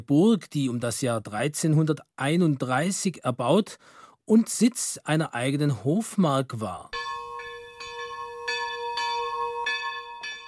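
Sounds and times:
speech: 0.0 - 7.0
church bells ringing in a steady overlapping peal: 7.0 - 10.4.

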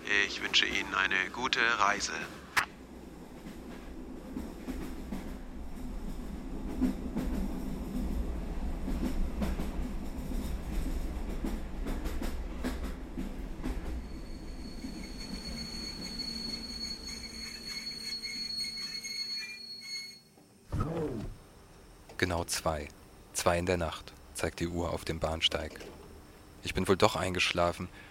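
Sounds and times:
train interior rumble and rattle of wheels and carriage: 0.0 - 19.4
speech: 0.1 - 2.4, 22.5 - 26.0, 26.6 - 28.0
thin high train wheel squeal: 14.0 - 20.3.

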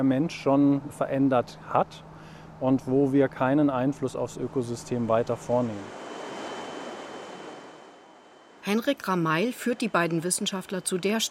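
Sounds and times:
speech: 0.0 - 6.0, 8.6 - 11.2
water rushing through a narrow channel: 4.8 - 8.8.

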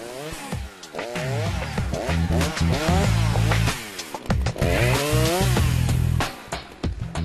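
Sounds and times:
chainsaw felling trees in a forest: 0.0 - 6.4.

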